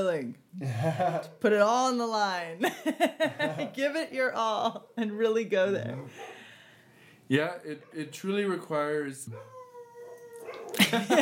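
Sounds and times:
speech: 0:00.0 - 0:06.4, 0:07.3 - 0:09.6, 0:10.7 - 0:11.1
laughter: 0:02.6 - 0:03.8, 0:10.8 - 0:11.1
dogs howling: 0:09.3 - 0:10.8.

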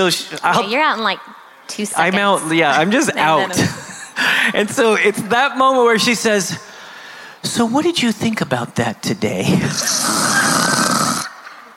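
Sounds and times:
speech: 0:00.0 - 0:03.8, 0:04.5 - 0:06.7, 0:07.4 - 0:10.2
person imitating a loud snore with their voice: 0:09.7 - 0:11.4.

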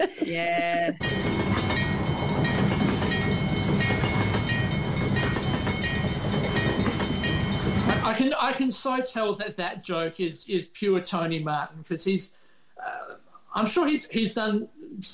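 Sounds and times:
laughter: 0:00.0 - 0:01.0
speech: 0:00.0 - 0:01.6, 0:08.1 - 0:13.0, 0:13.6 - 0:15.1
train wheels clattering: 0:01.0 - 0:08.1
long train rumbling past: 0:01.0 - 0:08.4.

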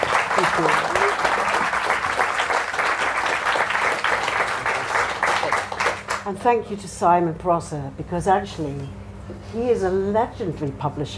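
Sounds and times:
audience applauding: 0:00.0 - 0:06.3
speech: 0:00.4 - 0:01.2, 0:06.3 - 0:11.1.

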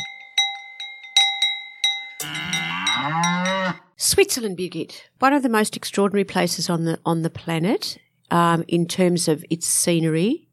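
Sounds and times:
cowbell clanking: 0:00.0 - 0:03.9
speech: 0:02.2 - 0:02.5, 0:04.0 - 0:10.4
cow mooing: 0:02.2 - 0:03.9.

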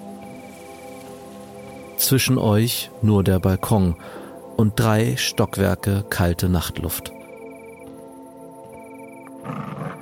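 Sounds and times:
speech: 0:02.0 - 0:07.2
monstrous beast growling: 0:09.4 - 0:09.9.

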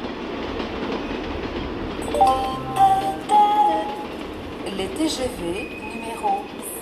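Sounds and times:
rumble of trains at a mainline railway station in France: 0:00.0 - 0:06.7.

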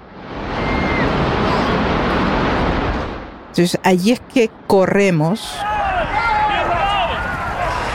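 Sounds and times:
110-storey skyscraper collapsing with rumbling debris: 0:00.0 - 0:04.7, 0:05.6 - 0:07.9
speech: 0:03.6 - 0:05.7.

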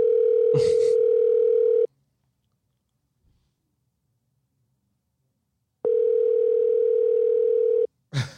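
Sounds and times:
telephone ringback tone through a phone line: 0:00.0 - 0:01.9, 0:05.8 - 0:07.9
mouth noise: 0:00.5 - 0:01.0.

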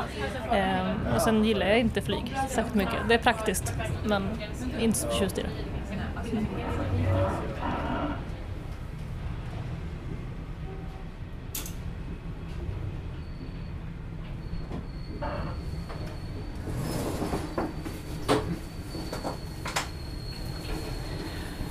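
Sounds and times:
faint voices murmuring: 0:00.0 - 0:09.5
passenger train rumbling along its rails heard from aboard: 0:00.0 - 0:21.6
speech: 0:00.2 - 0:05.7, 0:06.3 - 0:07.8
train squeals and clacks: 0:13.1 - 0:21.6.

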